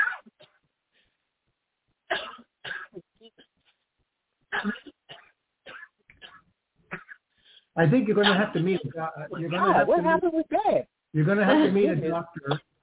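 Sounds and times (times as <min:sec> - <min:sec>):
harsh coughing fit: 0:02.1 - 0:03.6, 0:04.5 - 0:07.3, 0:08.1 - 0:09.8, 0:11.4 - 0:12.8
speech: 0:04.6 - 0:04.9, 0:07.8 - 0:12.7
laughter: 0:07.9 - 0:10.2, 0:11.3 - 0:12.6.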